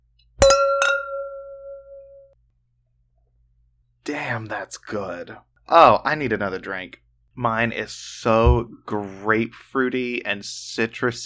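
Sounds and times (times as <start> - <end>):
wine glasses clinking in a toast: 0.4 - 2.3
speech: 4.1 - 11.2.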